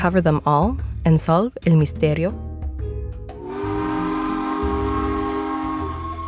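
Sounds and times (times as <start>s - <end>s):
speech: 0.0s - 2.5s
steam train whistle blowing as the train approaches: 3.4s - 6.2s.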